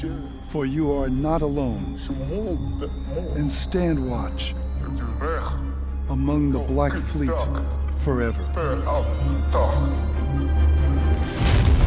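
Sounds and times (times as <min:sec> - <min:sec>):
speech: 0:00.0 - 0:10.6
steady low droning hum: 0:00.0 - 0:11.8
Klingon spaceship explosion: 0:11.2 - 0:11.8.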